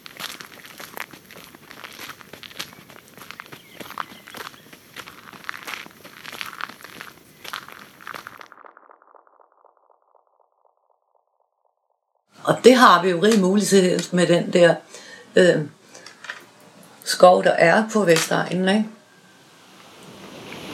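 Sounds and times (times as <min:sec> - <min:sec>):
footsteps crunching on needle-covered ground in a coniferous forest: 0:00.0 - 0:08.5
speech: 0:12.5 - 0:15.8, 0:17.2 - 0:19.0.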